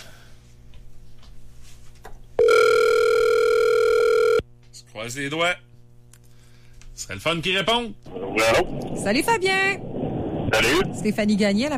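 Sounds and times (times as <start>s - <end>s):
steady electronic telephone tone on an outgoing call: 2.4s - 4.4s
speech: 5.0s - 5.7s, 7.1s - 9.9s, 10.5s - 11.7s.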